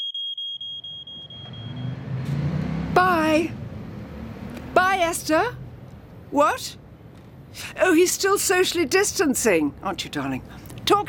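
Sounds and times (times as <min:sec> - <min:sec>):
smoke alarm set off by burnt sourdough toast beeping: 0:00.0 - 0:01.9
low rumbling engine: 0:01.1 - 0:07.6
speech: 0:03.4 - 0:03.6, 0:05.0 - 0:05.6, 0:06.3 - 0:06.8, 0:07.6 - 0:11.0.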